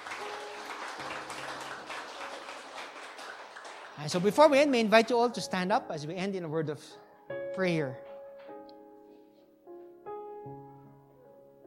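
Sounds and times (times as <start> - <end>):
audience applauding after a prayer: 0.0 - 5.3
speech: 4.0 - 8.1.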